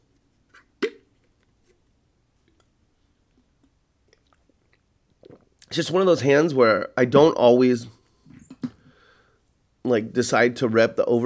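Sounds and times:
person sipping coffee: 3.3 - 5.7
speech: 5.8 - 8.0, 9.9 - 11.2.

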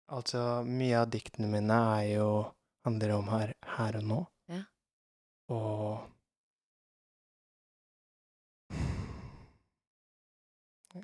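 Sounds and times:
speech: 0.1 - 4.7, 5.5 - 6.2
deep breathy sigh-like inhale: 8.7 - 9.6.

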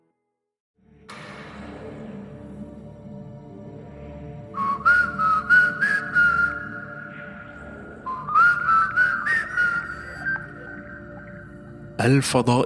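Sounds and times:
person whistling a short melodic tune: 4.6 - 11.4
speech: 12.0 - 12.6.

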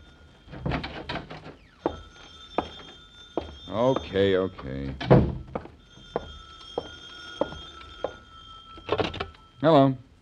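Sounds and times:
telephone ringing with high-pitched bell tone: 0.0 - 10.0
clattering knocks and thumps: 0.5 - 4.2, 4.9 - 8.2, 8.8 - 9.4
speech: 3.7 - 5.3, 9.6 - 10.0.

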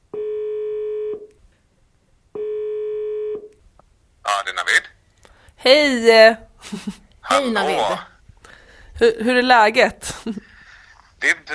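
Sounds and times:
telephone ringback tones as a call is placed: 0.1 - 1.3, 2.4 - 3.5
speech: 5.6 - 8.1, 9.0 - 10.5, 11.2 - 11.5.

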